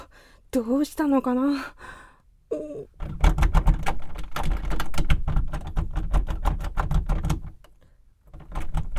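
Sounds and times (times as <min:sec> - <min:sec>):
speech: 0:00.5 - 0:03.2
stuck toilet door handle jiggled hard: 0:03.0 - 0:07.6, 0:08.3 - 0:08.9.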